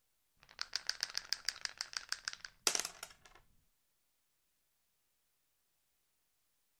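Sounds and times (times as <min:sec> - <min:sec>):
dice rolled, rattling and clattering: 0:00.4 - 0:03.4.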